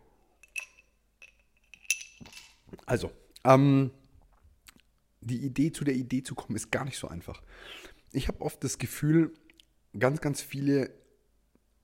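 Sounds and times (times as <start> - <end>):
small nearly empty gin glass clinking: 0.4 - 2.7
speech: 2.9 - 4.0, 5.2 - 11.0.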